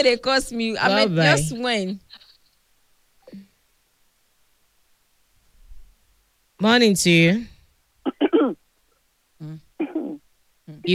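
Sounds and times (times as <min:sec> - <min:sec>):
speech: 0:00.0 - 0:02.2, 0:06.6 - 0:08.6, 0:09.4 - 0:10.9
person coughing: 0:08.1 - 0:08.6
throat clearing: 0:09.8 - 0:10.2.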